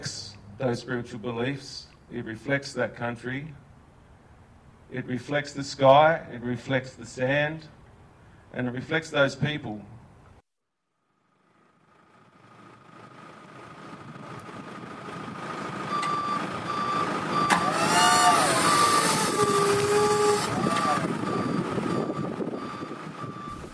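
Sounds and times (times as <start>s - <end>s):
speech: 0.0s - 3.7s, 4.9s - 7.8s, 8.5s - 10.0s
forklift engine droning while loading heavy rock carvings onto a truck: 11.4s - 23.7s
forklift reversing beep: 15.9s - 23.7s
forklift hydraulic whine: 16.8s - 23.7s.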